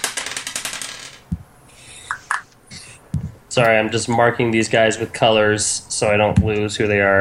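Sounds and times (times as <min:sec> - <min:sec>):
dice rattling: 0:00.0 - 0:01.4
speech: 0:03.6 - 0:07.2.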